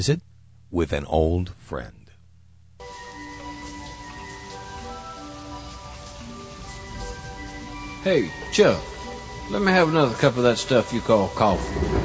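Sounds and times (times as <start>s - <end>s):
speech: 0.0s - 2.0s, 8.0s - 8.9s, 9.5s - 12.0s
faint sustained humming tones: 0.0s - 12.0s
steady rain falling: 2.8s - 12.0s.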